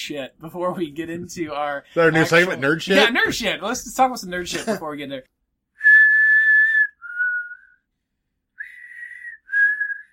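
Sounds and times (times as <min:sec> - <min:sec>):
speech: 0:00.0 - 0:05.4
person whistling clear steady notes: 0:05.8 - 0:07.8, 0:08.6 - 0:10.1.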